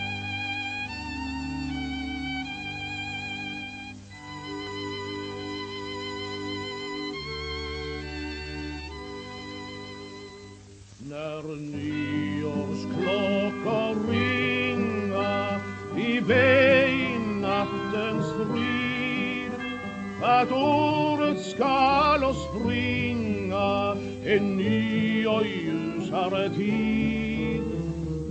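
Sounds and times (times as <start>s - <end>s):
1941 gramophone record of sung song with instrumental accompaniment: 0.0s - 28.2s.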